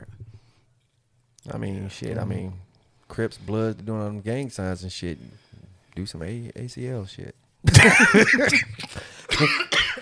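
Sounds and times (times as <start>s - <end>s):
speech: 1.5s - 9.8s
person coughing: 7.7s - 10.0s.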